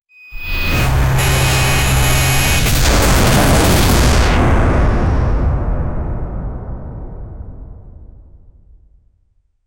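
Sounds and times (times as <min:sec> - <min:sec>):
giant robot self destructing in a massive explosion: 0:00.6 - 0:09.2.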